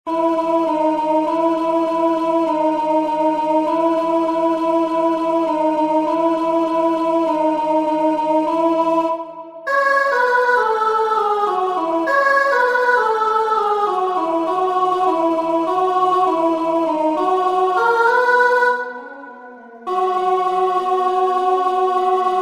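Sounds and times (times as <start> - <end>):
alto voice singing: 0.1 - 22.4.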